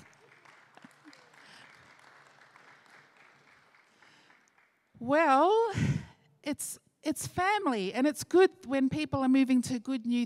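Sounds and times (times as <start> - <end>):
audience clapping: 0.0 - 5.0
speech: 5.0 - 5.8, 6.5 - 10.2.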